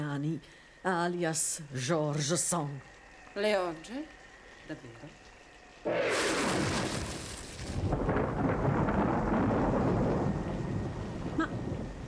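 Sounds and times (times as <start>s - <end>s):
rain: 0.0s - 12.0s
speech: 0.2s - 5.2s, 5.8s - 7.0s
thunder: 5.9s - 12.0s.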